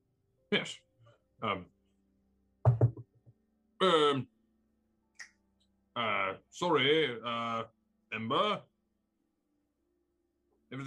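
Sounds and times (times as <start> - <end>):
speech: 0.5 - 1.8, 3.8 - 4.3, 6.0 - 8.7
knocking on a door: 2.6 - 3.2.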